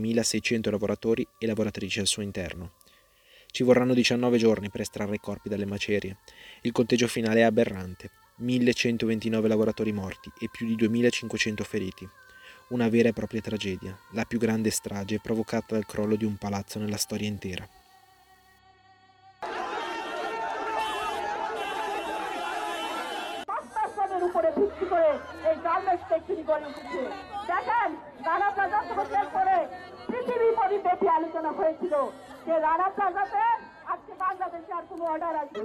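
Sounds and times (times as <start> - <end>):
speech: 0.0 - 2.9, 3.5 - 17.8, 24.6 - 35.6
crowd of people shouting in streets: 19.4 - 34.1.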